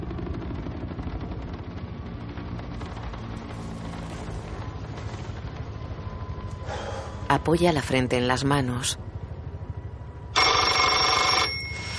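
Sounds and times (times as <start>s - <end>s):
low rhythmic rumble: 0.0s - 11.9s
speech: 7.3s - 9.1s
telephone ringing in a hotel room in Pripyat: 10.4s - 11.9s.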